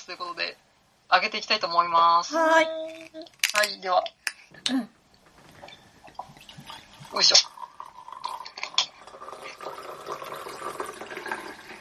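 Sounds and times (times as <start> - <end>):
speech: 0.1 - 5.0, 7.1 - 7.5
green matcha-flavoured beer pouring into a glass: 6.0 - 11.7.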